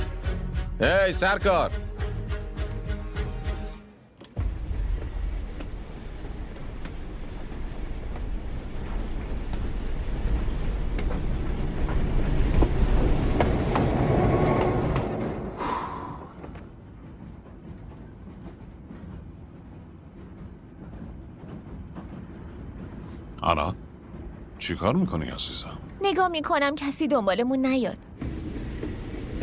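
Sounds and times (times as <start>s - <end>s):
train running on rails: 0.0s - 29.4s
speech: 0.8s - 1.8s, 23.5s - 23.8s, 24.7s - 28.3s
train wheels clickety-clack on rails: 4.4s - 26.4s, 28.2s - 29.4s.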